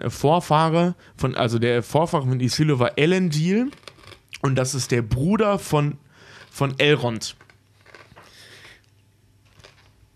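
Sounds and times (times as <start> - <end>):
speech: 0.0 - 3.8, 4.4 - 7.4
chewing crunchy pork rind chips: 7.3 - 10.1.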